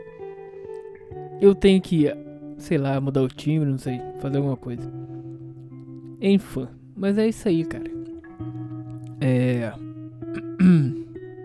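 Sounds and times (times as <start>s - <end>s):
speech: 1.4s - 5.1s, 6.2s - 8.5s, 9.2s - 10.9s
faint vocal noises: 9.0s - 11.2s
rough guttural throat clearing: 10.4s - 11.1s.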